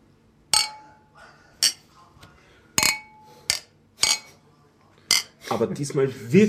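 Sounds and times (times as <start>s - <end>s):
beer glasses clinking in a toast: 0.6s - 1.0s, 2.8s - 4.4s, 5.1s - 5.4s
speech: 5.5s - 6.4s.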